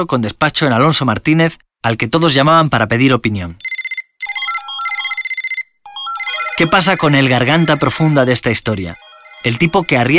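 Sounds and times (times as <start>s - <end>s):
speech: 0.0s - 3.6s, 6.6s - 10.1s
telephone ringing with an electronic trill: 3.6s - 10.1s.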